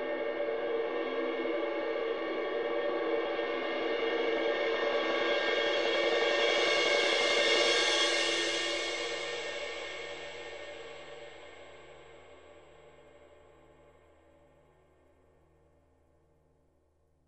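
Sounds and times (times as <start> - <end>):
huge cymbal swell: 0.2 - 13.3.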